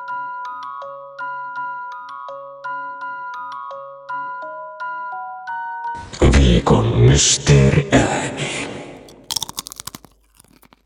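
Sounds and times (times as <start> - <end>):
speech: 6.3 - 8.7
potato chip crunching: 9.0 - 10.8.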